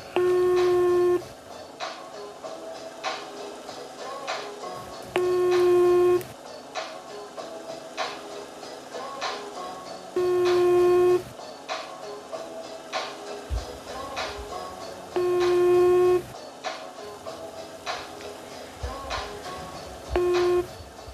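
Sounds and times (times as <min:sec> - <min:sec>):
phone call ringing tone through the earpiece: 0:00.0 - 0:01.3, 0:05.2 - 0:06.3, 0:10.2 - 0:11.3, 0:15.2 - 0:16.3, 0:20.1 - 0:20.8.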